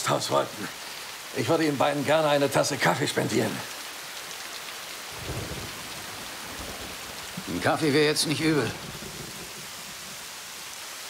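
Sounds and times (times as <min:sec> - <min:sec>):
heavy rain pouring: 0:00.0 - 0:11.0
speech: 0:00.1 - 0:03.8, 0:07.5 - 0:09.0
deep rumble of thunder: 0:05.1 - 0:11.0.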